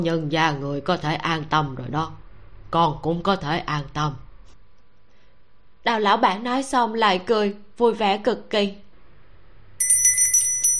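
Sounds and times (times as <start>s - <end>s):
speech: 0.0s - 4.2s, 5.8s - 8.8s
low hum: 0.0s - 10.7s
shop door bell jingling: 9.8s - 10.7s.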